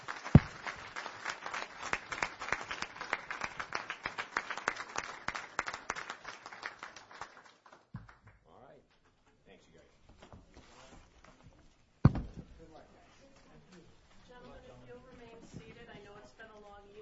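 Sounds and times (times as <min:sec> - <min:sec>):
audience applause before a meeting adjourns: 0:00.0 - 0:07.9.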